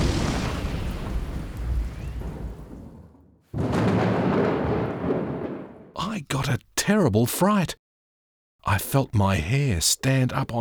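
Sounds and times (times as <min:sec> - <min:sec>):
heavy rumbling roar of thunder: 0:00.0 - 0:06.0
loud crack of a close lightning strike: 0:00.0 - 0:06.0
speech: 0:06.0 - 0:07.8, 0:08.6 - 0:10.5.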